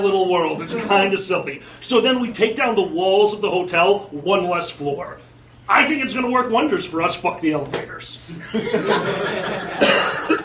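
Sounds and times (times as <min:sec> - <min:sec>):
speech: 0:00.0 - 0:10.4
people chuckling: 0:08.3 - 0:10.4
person coughing: 0:09.8 - 0:10.4.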